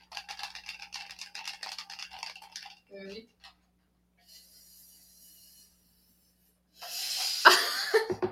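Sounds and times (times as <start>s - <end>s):
speech: 2.9s - 3.4s
soft hiss: 4.2s - 7.8s.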